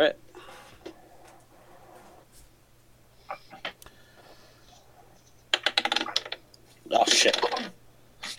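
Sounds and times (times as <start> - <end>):
speech: 0.0 - 0.2
faint scattered sounds: 0.1 - 8.3
dice clattering across a table during a tabletop role-playing game: 5.6 - 6.4.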